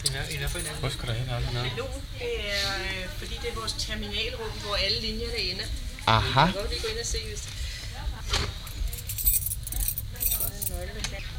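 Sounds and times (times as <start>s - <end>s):
bunch of keys jingling and clinking: 0.0s - 0.8s, 8.6s - 10.9s
speech: 0.0s - 8.5s
metallic rattling as someone fumbles at a door lock: 8.8s - 10.8s.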